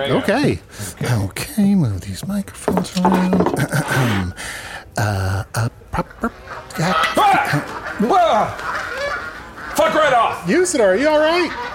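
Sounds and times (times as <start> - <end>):
speech: 0.0 - 8.7, 9.8 - 11.7
geese honking near a bar: 6.3 - 11.7.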